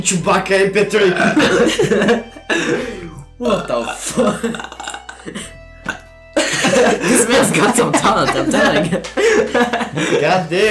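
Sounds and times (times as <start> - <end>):
speech: 0.0 - 6.0, 6.8 - 10.7
laughter: 1.0 - 3.2, 3.8 - 5.5, 6.4 - 10.7
loud gravelly throaty burp: 2.6 - 6.1.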